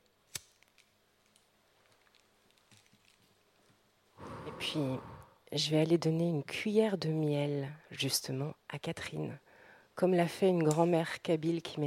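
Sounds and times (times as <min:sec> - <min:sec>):
lighter being struck to light candles: 0:00.3 - 0:00.9
speech: 0:04.6 - 0:09.4, 0:10.0 - 0:11.8.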